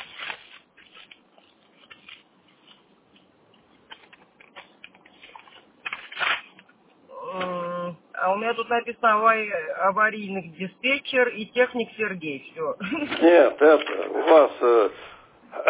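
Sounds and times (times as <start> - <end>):
papers being pulled out and shuffled: 0.0 - 6.8
speech: 8.3 - 15.1.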